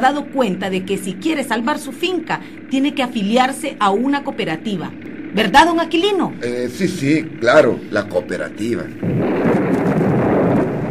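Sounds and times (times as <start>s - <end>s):
speech: 0.0s - 9.6s
thunder rumbling: 5.0s - 10.8s.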